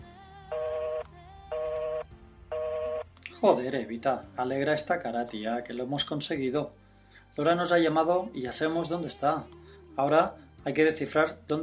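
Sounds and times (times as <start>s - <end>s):
telephone beeps after a cut-off call: 0.5s - 3.1s
speech: 3.4s - 6.8s, 7.4s - 11.6s.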